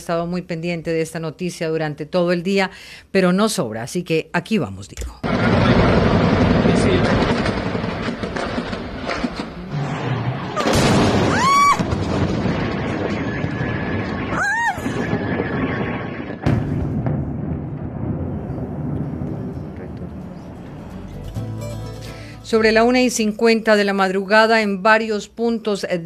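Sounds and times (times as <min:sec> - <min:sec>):
speech: 0:00.0 - 0:07.7, 0:22.5 - 0:26.0
heavy explosions from bombing of military sites: 0:05.2 - 0:21.0
constant low rumble like aircraft engines: 0:05.2 - 0:21.6.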